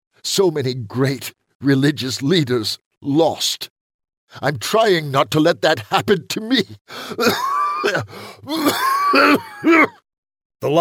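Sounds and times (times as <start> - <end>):
speech: 0.2 - 10.0, 10.6 - 10.7
man coughing in dry raspy bursts: 7.0 - 10.0.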